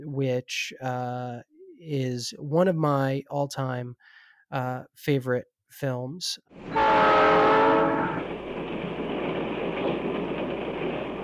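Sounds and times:
speech: 0:00.0 - 0:07.7
train rolling along the rails: 0:06.6 - 0:11.2
loud train horn blaring: 0:06.7 - 0:08.3.

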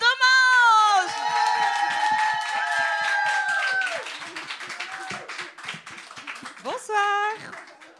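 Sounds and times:
audience cheering: 0:00.2 - 0:06.5
audience applause with dense clapping: 0:00.2 - 0:07.9.

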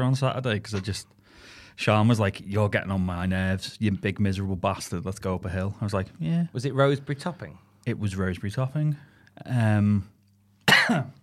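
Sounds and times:
speech: 0:00.0 - 0:10.1, 0:10.9 - 0:11.2
person coughing: 0:10.6 - 0:11.2.

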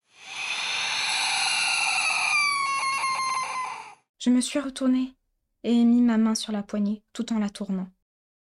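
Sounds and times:
harsh bird cry: 0:00.1 - 0:04.0
speech: 0:04.2 - 0:08.0.

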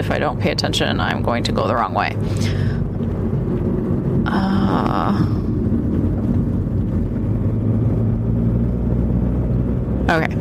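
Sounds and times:
speech: 0:00.0 - 0:02.8, 0:04.3 - 0:05.5, 0:10.1 - 0:10.3
car driving on the road with engine and road noise: 0:00.0 - 0:10.3.

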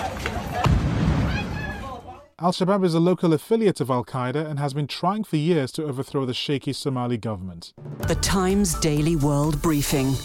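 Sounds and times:
noise: 0:00.0 - 0:10.2
sharp explosion: 0:00.6 - 0:02.0
speech: 0:02.4 - 0:10.2.

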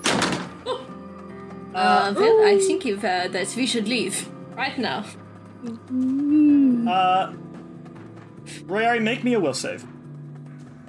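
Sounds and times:
heavy front door slamming shut: 0:00.0 - 0:00.6
speech: 0:01.8 - 0:07.4, 0:08.5 - 0:09.9.

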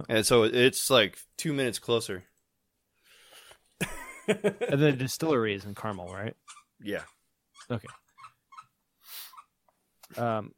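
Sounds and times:
speech: 0:00.0 - 0:02.3, 0:03.8 - 0:08.0, 0:10.1 - 0:10.5
laughter: 0:03.8 - 0:05.1
dog squeaking a squeaky toy on a bed: 0:05.7 - 0:09.6.

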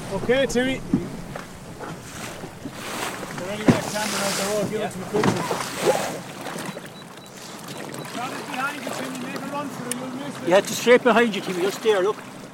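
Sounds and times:
wind buffeting the microphone on choppy sea: 0:00.0 - 0:06.4
sea water splashing: 0:00.0 - 0:12.5
waves slapping the hull of a rigid inflatable boat: 0:00.0 - 0:12.5
speech: 0:00.1 - 0:01.0, 0:03.4 - 0:06.4, 0:08.1 - 0:12.4.

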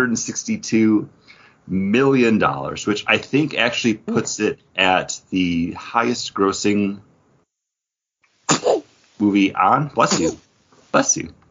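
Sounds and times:
speech: 0:00.0 - 0:07.1, 0:09.2 - 0:11.4
sneeze: 0:08.5 - 0:08.9, 0:10.0 - 0:10.4.

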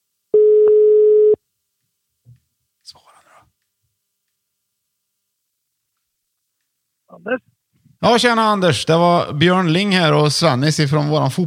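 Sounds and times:
telephone ringing tone beep while placing a call: 0:00.4 - 0:01.4
speech: 0:07.2 - 0:11.4.

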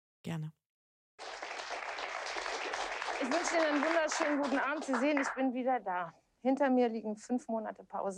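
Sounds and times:
speech: 0:00.2 - 0:00.6, 0:03.2 - 0:08.1
large TV studio audience applause in a standing ovation: 0:01.2 - 0:05.4.

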